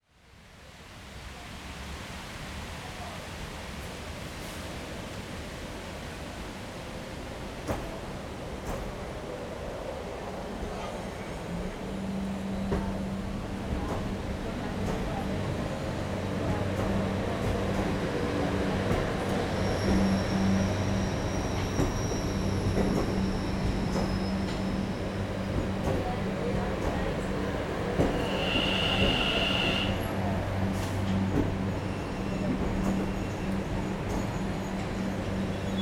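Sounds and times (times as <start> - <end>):
train station ambience at Olivos, Buenos Aires: 0.2 - 35.8.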